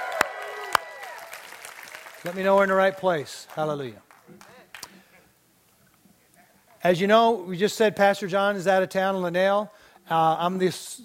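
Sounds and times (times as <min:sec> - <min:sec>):
sharp hand claps: 0:00.0 - 0:02.7
speech: 0:02.2 - 0:04.5, 0:06.8 - 0:11.0.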